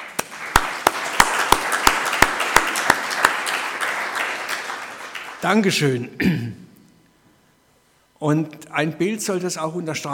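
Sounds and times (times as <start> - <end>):
audience applause: 0.0 - 5.7
speech: 5.4 - 6.6, 8.2 - 10.1.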